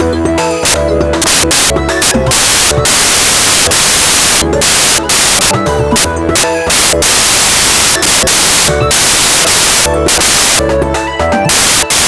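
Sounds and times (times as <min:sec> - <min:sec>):
pop background music: 0:00.0 - 0:12.0.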